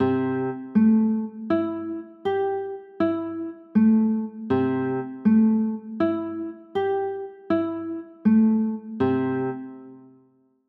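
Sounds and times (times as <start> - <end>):
C6 chords: 0.0 - 10.1.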